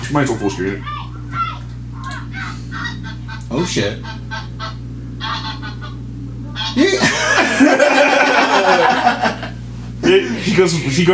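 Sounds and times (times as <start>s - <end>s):
steady low hum: 0.0s - 11.1s
speech: 0.1s - 1.1s, 3.5s - 4.2s, 6.8s - 9.4s, 10.1s - 11.1s
goose honking in alarm: 2.4s - 6.8s
laughter: 6.6s - 10.6s.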